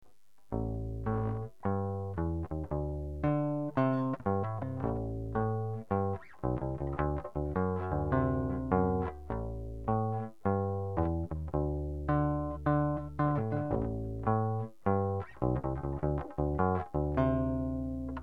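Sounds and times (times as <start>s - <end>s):
bass: 0.0s - 18.2s.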